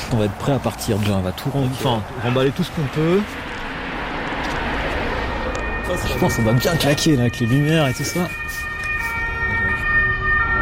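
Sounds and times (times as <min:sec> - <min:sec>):
low rumble of vehicle noise: 0:00.0 - 0:10.6
speech: 0:00.1 - 0:03.5, 0:05.9 - 0:08.7
fire engine siren: 0:03.5 - 0:10.6.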